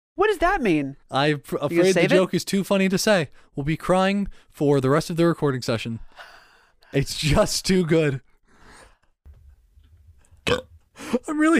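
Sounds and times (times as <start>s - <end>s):
speech: 0.2s - 6.3s, 6.9s - 8.3s, 10.5s - 11.5s
low rumbling burp into a microphone: 10.4s - 10.8s.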